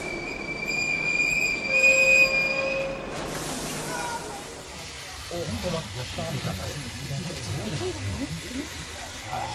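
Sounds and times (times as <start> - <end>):
crowded passenger train's wheels screeching as it brakes: 0.0 - 5.3
voices: 3.8 - 9.5.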